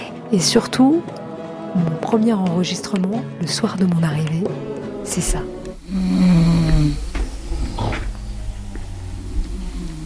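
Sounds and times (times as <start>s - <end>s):
speech: 0.3s - 6.4s
women snoring asleep in a shared room at night: 5.4s - 10.0s.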